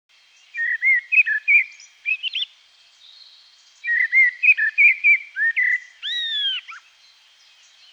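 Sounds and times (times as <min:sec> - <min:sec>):
common blackbird: 0:00.2 - 0:07.9.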